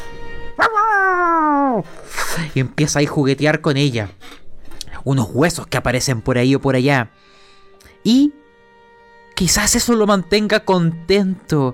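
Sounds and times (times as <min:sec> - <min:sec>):
dog giving a drawn-out howl-like bark: 0:00.6 - 0:01.0
speech: 0:01.8 - 0:04.4, 0:05.0 - 0:07.4, 0:08.0 - 0:08.4, 0:09.4 - 0:11.7.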